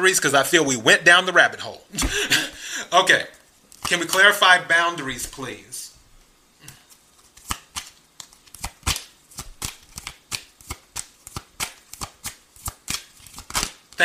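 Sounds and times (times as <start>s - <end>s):
speech: 0.0s - 5.9s
tarot cards being shuffled: 6.7s - 14.0s.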